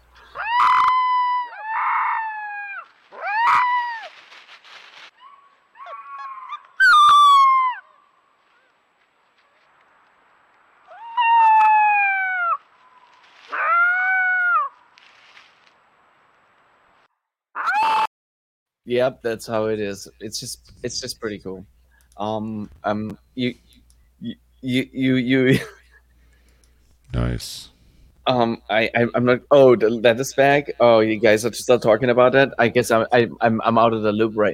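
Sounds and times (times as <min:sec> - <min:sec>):
young wolf pup howling: 0:00.4 - 0:04.2, 0:05.2 - 0:07.9, 0:10.9 - 0:12.6, 0:13.5 - 0:14.8
speech: 0:18.9 - 0:25.8, 0:27.4 - 0:27.7, 0:28.3 - 0:34.5.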